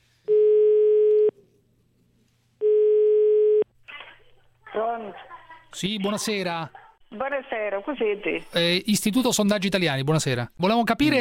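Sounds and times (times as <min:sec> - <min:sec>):
ringback tone of an outgoing telephone call: 0:00.3 - 0:01.3, 0:02.6 - 0:03.6
speech: 0:05.0 - 0:11.2.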